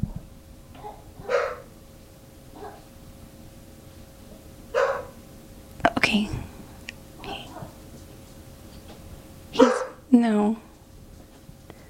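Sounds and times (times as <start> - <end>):
dog barking: 0.8 - 1.7, 2.6 - 2.9, 4.7 - 5.2, 9.6 - 10.0
speech: 6.1 - 6.5, 10.2 - 10.6.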